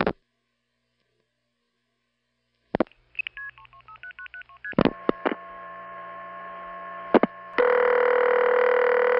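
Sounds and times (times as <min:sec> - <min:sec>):
steady multi-tone telephone line signal: 0:04.6 - 0:09.1.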